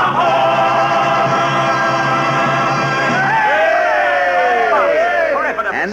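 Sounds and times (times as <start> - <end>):
huge stadium crowd cheering and roaring: 0.2 - 5.8
individual whoops and shouts from stadium crowd: 3.1 - 5.4.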